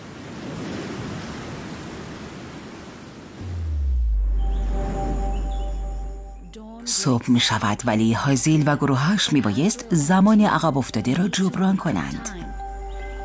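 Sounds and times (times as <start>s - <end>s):
heavy rain downpour: 0.0s - 3.8s
deep low rumble with sustained tonal hums: 3.4s - 6.8s
speech: 6.9s - 12.5s.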